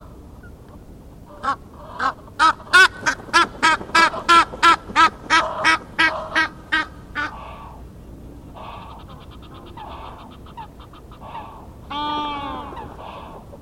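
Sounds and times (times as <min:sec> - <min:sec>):
Nilgans: 0:01.3 - 0:07.8, 0:08.5 - 0:13.5.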